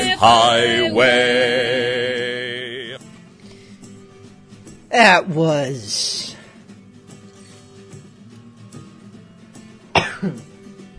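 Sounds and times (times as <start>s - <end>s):
speech: 0.2s - 2.0s, 4.9s - 6.3s, 10.2s - 10.4s
single sharp cough with throaty rasp: 10.0s - 10.5s.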